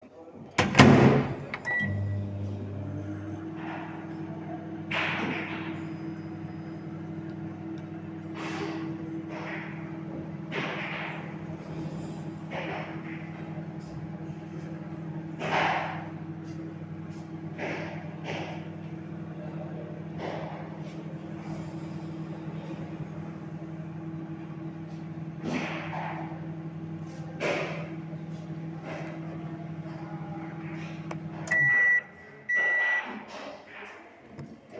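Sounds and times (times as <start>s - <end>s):
microwave oven: 0.6s - 33.2s.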